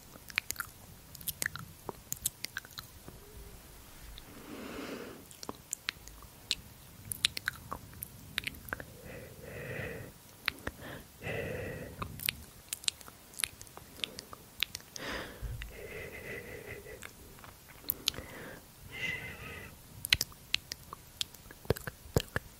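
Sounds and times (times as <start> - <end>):
dry mouth sounds: 0.0 - 22.5
murmured breathy voice: 8.4 - 12.4, 13.9 - 19.8.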